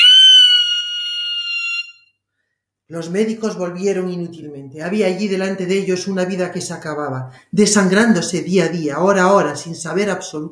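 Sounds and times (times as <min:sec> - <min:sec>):
woman's scream of horror: 0:00.0 - 0:01.9
speech: 0:02.9 - 0:10.5.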